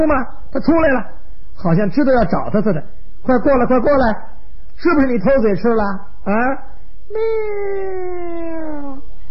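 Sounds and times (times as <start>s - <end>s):
speech: 0.0s - 9.1s
person imitating a kitten meowing: 7.1s - 9.1s.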